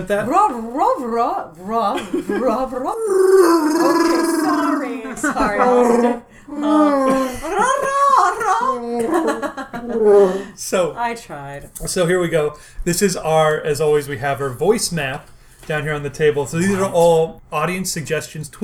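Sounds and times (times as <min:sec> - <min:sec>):
speech: 0:00.0 - 0:07.7, 0:09.2 - 0:18.6
laughter: 0:02.0 - 0:10.5
person voicing a Wookiee-style growl and howl: 0:02.9 - 0:07.3, 0:08.6 - 0:10.4.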